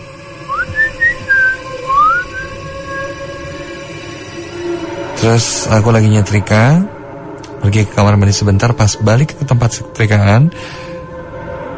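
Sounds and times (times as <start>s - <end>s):
person whistling during ghost-story telling: 0.5s - 3.1s
speech: 5.2s - 7.0s, 7.6s - 10.9s.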